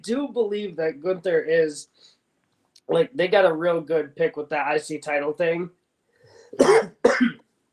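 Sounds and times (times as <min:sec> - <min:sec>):
speech: 0:00.0 - 0:02.2, 0:02.9 - 0:05.8, 0:06.5 - 0:07.3
harsh coughs: 0:06.5 - 0:07.4.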